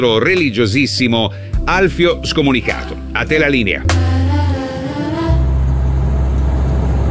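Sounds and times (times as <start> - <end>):
speech: 0.0 - 4.2
vehicle engine droning while driving on the road: 3.9 - 7.0.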